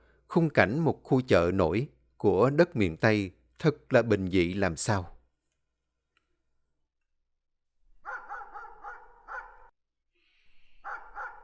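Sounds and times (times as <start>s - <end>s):
speech: 0.3s - 5.2s
black dog barking loudly outside a door: 8.0s - 9.7s, 10.8s - 11.4s.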